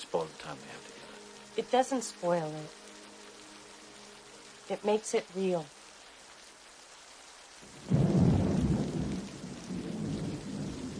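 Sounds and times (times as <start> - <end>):
steady rain hissing: 0.0 - 10.9
speech: 0.1 - 0.9, 1.6 - 2.8, 4.7 - 5.8
deep rumble of thunder: 7.6 - 10.9.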